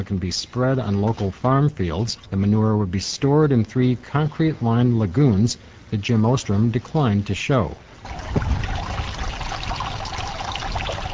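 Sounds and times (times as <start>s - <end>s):
speech: 0.0s - 8.7s
small decorative waterfall on a rural property trickling and splashing: 8.0s - 11.1s.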